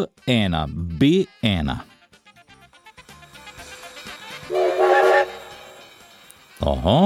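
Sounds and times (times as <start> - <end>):
speech: 0.0 - 2.0, 6.6 - 7.0
loud train whistle blowing: 2.6 - 6.7.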